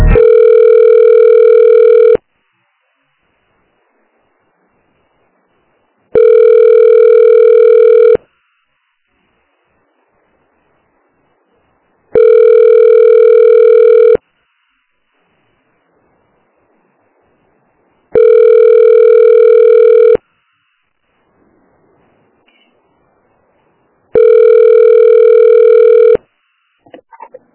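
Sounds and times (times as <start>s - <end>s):
telephone ringback tone while a call is transferred: 0.1s - 2.3s, 6.1s - 8.2s, 12.1s - 14.2s, 18.1s - 20.2s, 24.1s - 26.2s.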